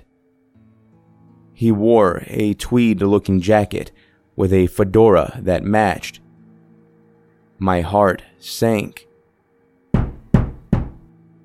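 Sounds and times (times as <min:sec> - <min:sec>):
speech: 0:01.6 - 0:06.2, 0:07.6 - 0:09.1
heavy knocks on a front door: 0:09.9 - 0:11.1.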